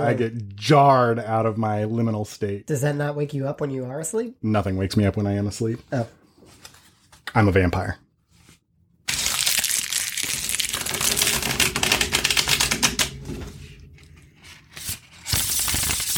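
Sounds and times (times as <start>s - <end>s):
speech: 0.0s - 6.2s, 7.3s - 8.0s
tarot cards being reverse shuffled: 8.4s - 13.2s, 14.7s - 16.1s.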